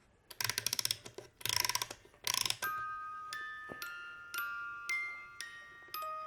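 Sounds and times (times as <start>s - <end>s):
ratcheting clicks of toy's little doors moving: 0.3s - 2.7s
small mechanical toy whirring: 0.3s - 3.5s
clear tinkling chime-like notes: 2.6s - 6.2s.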